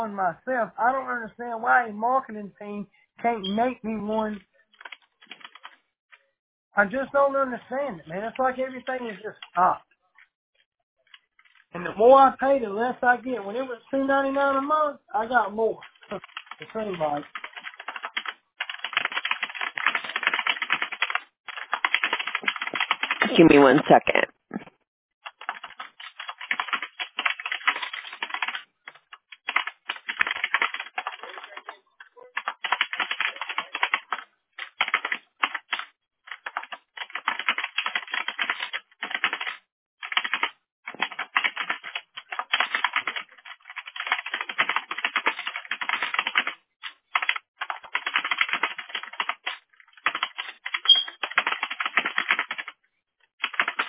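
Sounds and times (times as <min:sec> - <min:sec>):
speech: 0:00.0 - 0:04.5, 0:06.8 - 0:09.9, 0:11.7 - 0:17.4, 0:23.3 - 0:24.6
typing on a computer keyboard: 0:04.8 - 0:05.8, 0:15.8 - 0:23.4, 0:25.3 - 0:52.8, 0:53.4 - 0:53.8.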